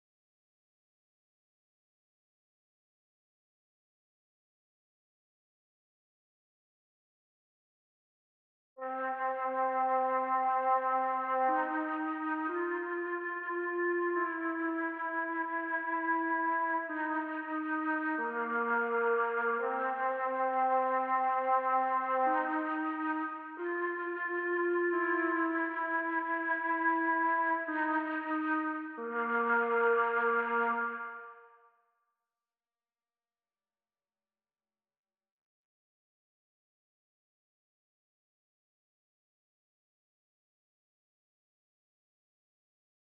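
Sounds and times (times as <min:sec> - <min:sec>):
Mellotron flute sounds: 0:08.8 - 0:31.5.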